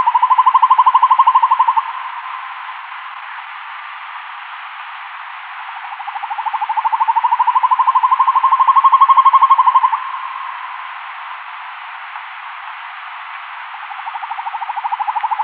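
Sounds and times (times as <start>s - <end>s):
male northern hawk-owl display call trill: 0.0s - 2.5s, 5.8s - 10.8s, 13.8s - 15.4s.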